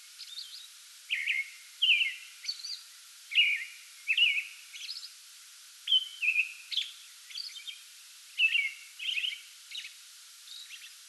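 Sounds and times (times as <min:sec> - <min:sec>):
background hiss: 0:00.0 - 0:11.0
American robin pre-dawn song bout: 0:00.2 - 0:05.1, 0:05.9 - 0:07.8, 0:08.4 - 0:09.9.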